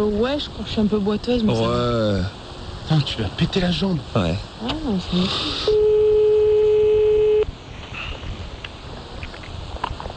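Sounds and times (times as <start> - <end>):
speech: 0.0 - 5.9
low noise: 0.0 - 10.1
steady telephone tone while a call is dialed: 5.7 - 7.5.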